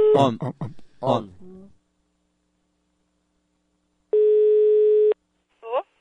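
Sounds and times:
speech: 0.1 - 1.4
telephone call ringing tone: 4.2 - 5.2.

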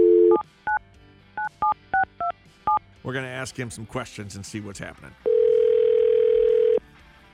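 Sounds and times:
long steady telephone ringback tone: 0.0 - 0.8, 5.2 - 6.8
speech: 3.0 - 5.3.

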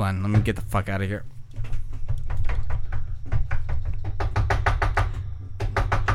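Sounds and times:
speech: 0.0 - 1.4
person pounding on a door: 1.6 - 6.1.

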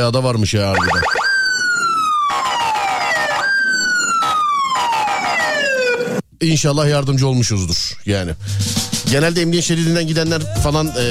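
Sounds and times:
speech: 0.0 - 1.2, 6.4 - 11.0
police car siren wailing: 0.7 - 6.2.

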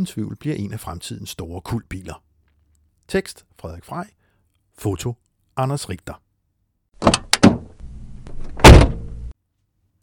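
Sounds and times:
speech: 0.0 - 2.3, 3.1 - 4.2, 4.8 - 6.2
Honda Integra Type R door landing with a heavy thud: 8.5 - 9.2.

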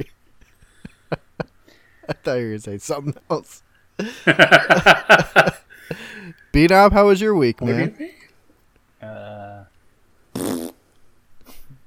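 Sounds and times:
speech: 2.2 - 5.6, 6.6 - 8.1
laughter: 4.0 - 6.1
man farting into a microphone: 10.3 - 10.8.

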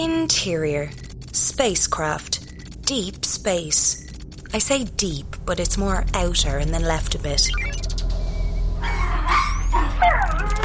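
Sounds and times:
speech: 0.0 - 7.8
low steady hum inside a spacecraft: 0.0 - 10.6
small alien space puppy yipping and whimpering: 8.8 - 10.6.

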